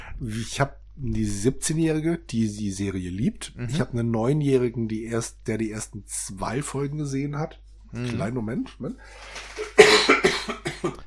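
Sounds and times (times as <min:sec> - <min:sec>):
speech: 0:00.2 - 0:11.0
harsh coughing fit: 0:09.6 - 0:11.0.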